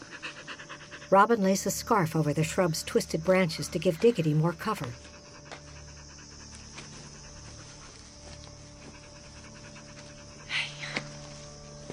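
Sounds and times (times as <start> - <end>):
dog panting in the heat: 0.0 - 1.5, 4.9 - 10.8
constant low hum: 0.0 - 11.9
speech: 1.1 - 5.1.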